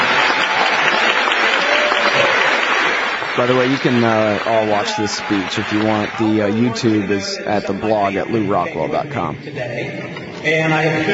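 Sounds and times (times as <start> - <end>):
audience applause: 0.0 - 8.4
speech: 3.4 - 11.1.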